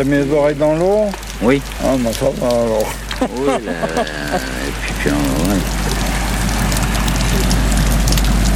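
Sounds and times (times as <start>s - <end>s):
speech: 0.0s - 6.0s
waves washing back over the shore: 0.0s - 8.5s
laughter: 1.4s - 7.8s.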